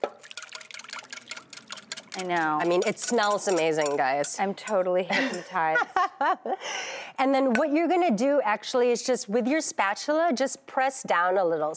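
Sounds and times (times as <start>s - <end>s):
custard being poured into a baking dish: 0.0s - 3.9s
speech: 2.2s - 11.7s.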